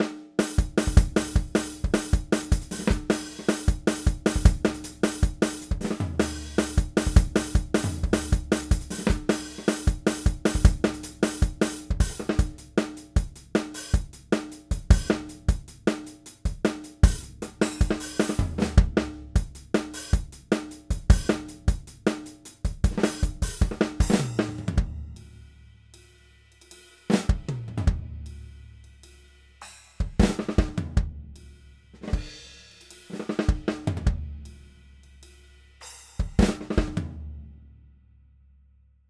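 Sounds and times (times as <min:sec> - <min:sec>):
dry garage rock drums: 0:00.0 - 0:25.4, 0:26.6 - 0:28.8, 0:29.6 - 0:34.7, 0:35.8 - 0:37.2.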